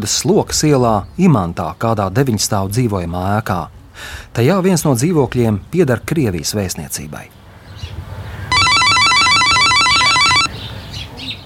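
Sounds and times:
speech: 0.0 - 7.4
electronic intercom buzzer ringing at nine-storey residential building on Slokas Street: 8.5 - 10.5.

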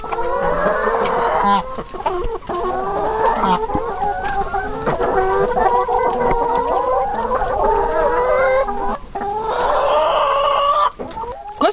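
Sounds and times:
flock of brown Lohmann Brown laying hens clucking on a small farm in Latvia: 0.0 - 11.7.

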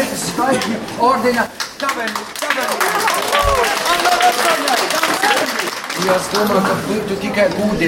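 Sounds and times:
speech: 0.4 - 7.8
large audience applauding: 1.6 - 6.9
people cheering and calling out: 1.8 - 6.7.

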